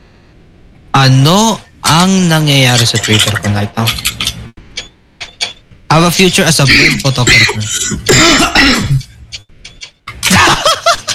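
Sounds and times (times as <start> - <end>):
speech: 1.0 - 4.2, 6.1 - 8.9
loud harsh hacking coughs: 6.7 - 9.1
laughter: 10.2 - 11.1.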